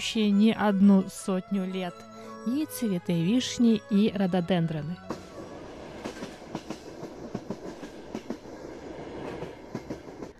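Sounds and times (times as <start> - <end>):
speech: 0.0 - 5.2
mountain forest railway train rumbling drone: 2.0 - 10.3
mountain forest railway train wheels clickety-clack on rails: 5.0 - 10.3.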